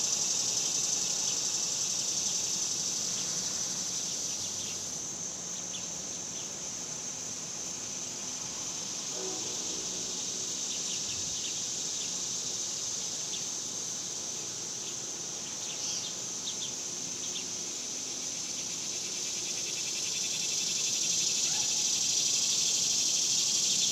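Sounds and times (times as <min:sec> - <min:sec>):
several cicadas droning outdoors in summer in a suburban area: 0:00.0 - 0:23.9.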